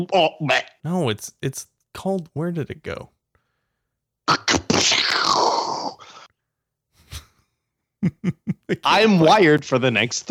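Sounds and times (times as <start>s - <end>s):
speech: 0.0s - 3.2s, 8.0s - 10.3s
cartoonish vomiting sound effect played from a soundboard: 4.3s - 6.3s
laughter: 8.0s - 9.2s.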